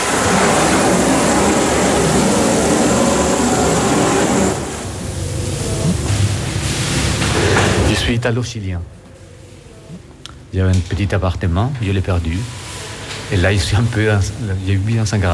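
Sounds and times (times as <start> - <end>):
shower water spraying: 0.0 - 7.9, 12.2 - 15.3
speech: 8.2 - 9.0, 9.9 - 12.6, 13.3 - 15.3.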